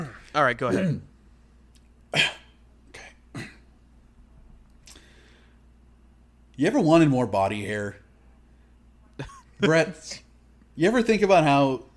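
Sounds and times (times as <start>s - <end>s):
speech: 0.0s - 1.1s, 2.1s - 2.4s, 6.6s - 8.0s, 9.2s - 10.2s, 10.8s - 11.9s
person clearing throat: 0.7s - 1.1s, 2.1s - 3.7s.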